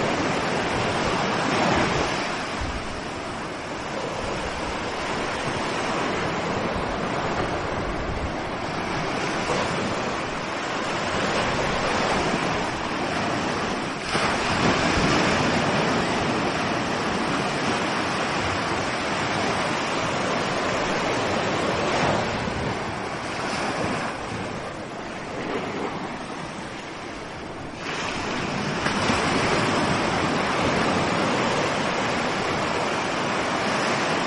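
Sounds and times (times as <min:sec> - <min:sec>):
low wind-like rumble: 0:00.0 - 0:34.2
night ocean waves washing onto the shore: 0:00.0 - 0:34.2.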